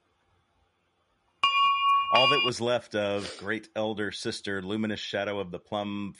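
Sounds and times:
bell rolling and clanking: 1.4s - 2.5s
speech: 2.1s - 6.1s.

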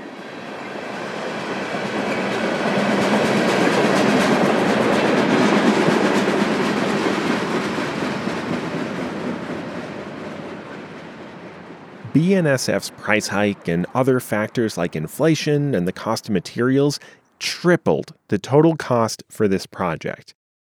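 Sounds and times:
freight train with oil tanker cars rumbling past: 0.0s - 16.2s
freight train wheel clatter: 0.6s - 12.0s
speech: 12.2s - 20.4s.

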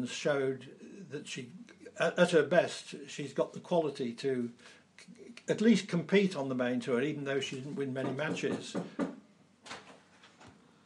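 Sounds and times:
speech: 0.0s - 9.2s
faint knocking on a door: 8.0s - 9.2s.

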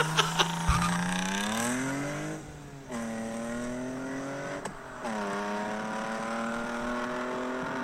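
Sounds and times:
laughter: 0.0s - 1.0s
BMW 318ti compact car engine revving through gear changes: 0.0s - 7.8s.

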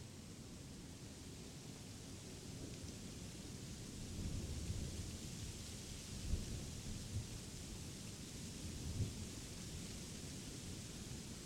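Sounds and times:
steady rain: 0.0s - 11.4s.

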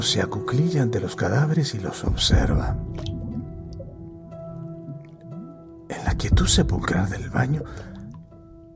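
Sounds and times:
speech: 0.0s - 3.1s, 6.1s - 7.9s
viscous liquid bubbling in a bathtub: 2.1s - 8.7s.

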